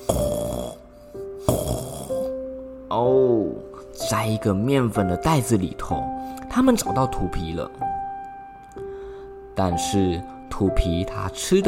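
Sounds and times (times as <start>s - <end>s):
faint snoring of a sleeping cat: 0.0s - 2.3s
speech: 2.9s - 8.0s, 9.6s - 11.6s.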